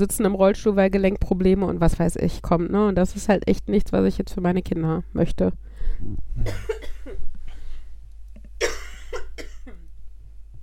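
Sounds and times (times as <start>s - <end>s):
speech: 0.0s - 7.3s
harsh coughing: 6.4s - 7.2s, 8.6s - 9.8s.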